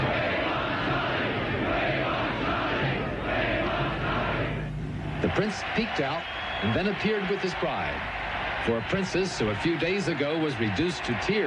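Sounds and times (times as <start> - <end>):
huge outdoor crowd roaring at palace gates in London after royal wedding: 0.0 - 11.4
speech: 5.4 - 11.4.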